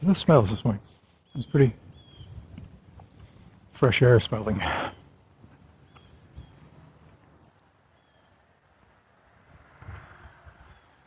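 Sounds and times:
speech: 0:00.0 - 0:01.8, 0:03.8 - 0:05.0
blue jays chirping: 0:01.1 - 0:02.6, 0:04.8 - 0:08.4
car passing far off on a breezy morning: 0:06.6 - 0:11.0.

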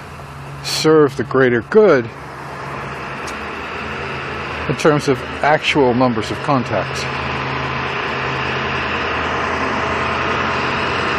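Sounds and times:
truck engine rumbling: 0:00.0 - 0:11.1
speech: 0:00.8 - 0:02.2, 0:04.7 - 0:07.4.

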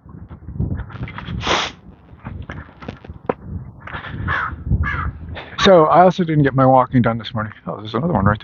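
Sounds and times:
outdoor noise: 0:00.0 - 0:08.4
crow cawing from top of pine tree: 0:03.8 - 0:05.2
speech: 0:05.6 - 0:08.4.

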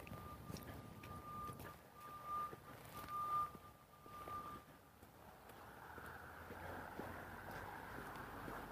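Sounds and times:
crane reversing alarm beeping on a building site: 0:00.0 - 0:04.9
outdoor wind: 0:00.0 - 0:08.7.

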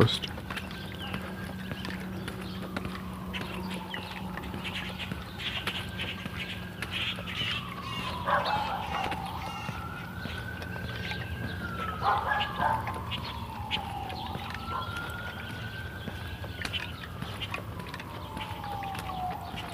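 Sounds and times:
speech: 0:00.0 - 0:00.3
several sirens wailing: 0:00.0 - 0:19.7
dog howling: 0:07.6 - 0:10.4, 0:11.0 - 0:15.6, 0:17.8 - 0:19.7.

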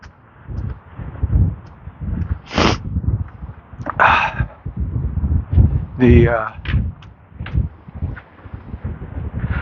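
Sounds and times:
sharp rustles and whooshes: 0:00.0 - 0:09.6
strong chilly wind buffeting the microphone on the High Plains in Colorado: 0:00.0 - 0:09.6.

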